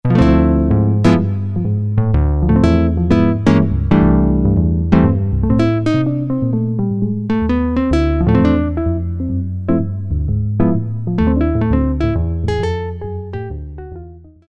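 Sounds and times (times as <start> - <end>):
jazz guitar patch on Roland MKS-50 synthesizer: 0.0 - 14.4.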